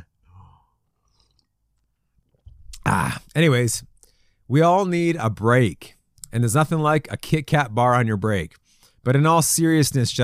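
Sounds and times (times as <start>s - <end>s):
quiet mouth sounds: 0.0s - 3.3s
swallow: 0.4s - 1.6s
person sipping coffee: 0.9s - 1.9s
speech: 2.9s - 3.9s, 4.5s - 10.2s.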